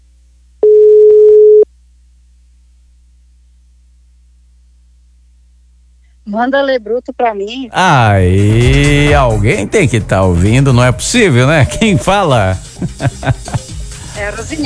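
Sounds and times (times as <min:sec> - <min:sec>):
telephone ringback tone on an outgoing call: 0:00.6 - 0:01.6
speech: 0:06.3 - 0:13.6, 0:14.2 - 0:14.6
laughter: 0:07.8 - 0:13.9.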